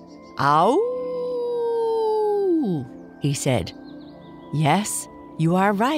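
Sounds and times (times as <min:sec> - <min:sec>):
speech: 0:00.4 - 0:00.9, 0:02.6 - 0:03.8, 0:04.5 - 0:05.9
person imitating a long wolf howl: 0:00.6 - 0:02.9.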